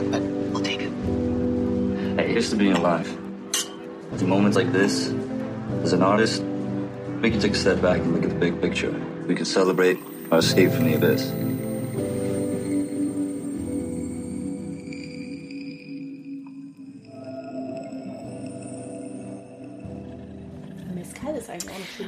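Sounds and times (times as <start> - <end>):
ambient music of layered sustained synth tones and deep drones: 0.0 - 22.0
speech: 2.4 - 3.2, 4.1 - 6.5, 7.2 - 11.5
higher shimmering sounds: 9.5 - 22.0.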